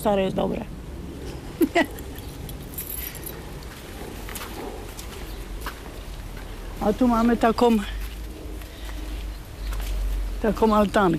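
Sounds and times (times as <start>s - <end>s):
speech: 0.0s - 0.8s, 1.7s - 2.0s, 6.8s - 8.0s, 10.4s - 11.1s
steady quiet noise: 0.0s - 11.1s
keys jangling: 2.4s - 3.6s.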